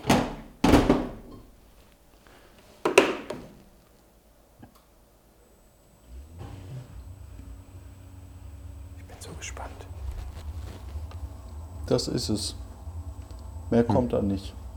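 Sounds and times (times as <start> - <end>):
modern dishwasher door shut and latched: 0.0 - 1.3
speech: 9.3 - 9.9, 11.9 - 12.6, 13.7 - 14.6.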